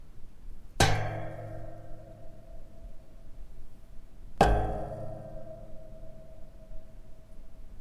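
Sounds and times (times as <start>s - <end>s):
hitting a wire cage: 0.8s - 2.9s, 4.4s - 6.4s.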